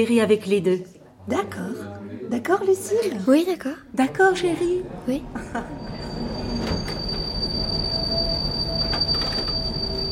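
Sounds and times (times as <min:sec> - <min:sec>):
speech: 0:00.0 - 0:06.1
metro train rumbling along: 0:05.2 - 0:10.1
metro train wheels squealing against the rails: 0:05.7 - 0:10.1.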